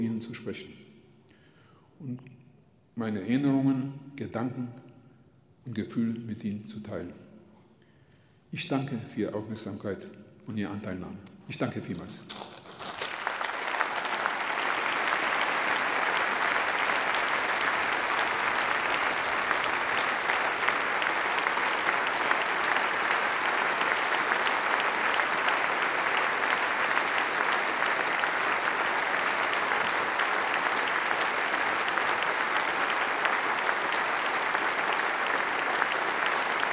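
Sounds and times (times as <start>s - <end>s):
speech: 0.0s - 0.9s, 2.0s - 2.4s, 3.0s - 4.9s, 5.6s - 7.3s, 8.5s - 12.5s
sustained dense standing ovation applause from a large audience: 12.4s - 36.7s.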